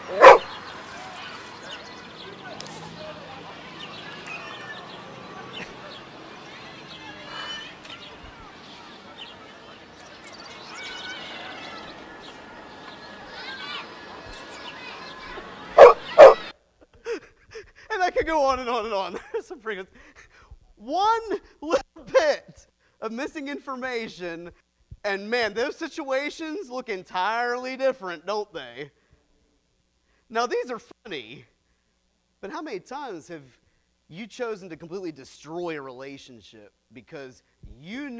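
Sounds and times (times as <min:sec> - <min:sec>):
dog barking: 0:00.0 - 0:00.5, 0:15.8 - 0:16.5
low busy murmur: 0:00.0 - 0:16.5
laughter: 0:04.2 - 0:07.3
speech: 0:18.3 - 0:20.1, 0:20.8 - 0:22.4, 0:23.1 - 0:29.0, 0:30.3 - 0:31.5, 0:32.4 - 0:38.1.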